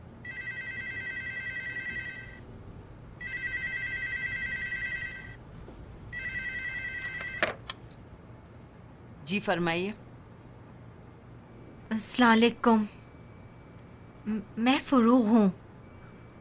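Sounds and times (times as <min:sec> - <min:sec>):
telephone ringing with electronic warble: 0:00.2 - 0:02.4, 0:03.2 - 0:05.4, 0:06.1 - 0:07.6
speech: 0:09.3 - 0:10.0, 0:12.0 - 0:13.0, 0:14.3 - 0:15.6.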